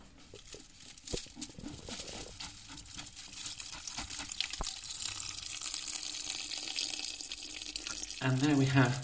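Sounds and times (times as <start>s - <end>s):
soaked herbs poured into a large stainless steel press: 0.4s - 9.0s
water dripping and trickling: 2.4s - 9.0s
speech: 8.2s - 9.0s.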